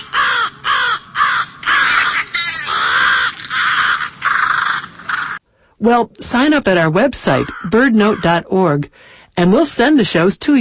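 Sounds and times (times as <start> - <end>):
crows cawing: 0.0 - 5.4, 7.3 - 8.4
speech: 5.8 - 10.5.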